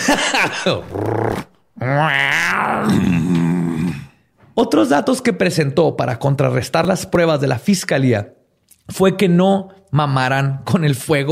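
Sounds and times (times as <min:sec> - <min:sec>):
speech: 0:00.0 - 0:03.4, 0:04.6 - 0:11.3
person imitating a purring growl with their voice: 0:00.7 - 0:04.2.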